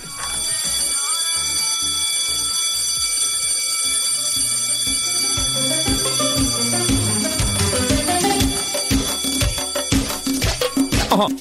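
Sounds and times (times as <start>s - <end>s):
school recess bell ringing: 0.0s - 11.3s
dense tonal and rhythmic layers: 5.2s - 11.3s.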